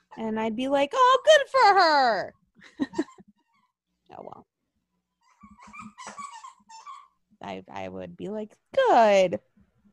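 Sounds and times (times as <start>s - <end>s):
speech: 0.2s - 3.1s, 4.1s - 4.5s, 7.4s - 9.5s
dogs growling and whimpering: 5.2s - 7.2s.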